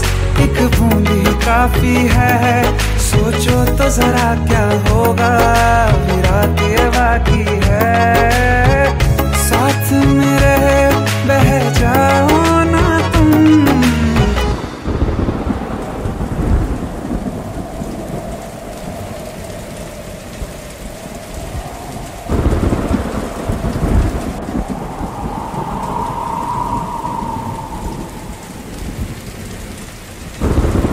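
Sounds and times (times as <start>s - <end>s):
steady heavy rain hissing: 0.0s - 30.9s
speech: 0.6s - 9.0s, 9.6s - 13.8s
deep rolls of thunder rumbling: 14.5s - 30.9s.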